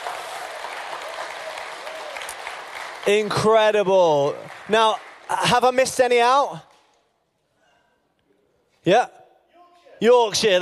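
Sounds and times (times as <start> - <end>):
audience applause: 0.0 - 6.2
speech: 3.0 - 6.7, 8.8 - 9.2, 10.0 - 10.6.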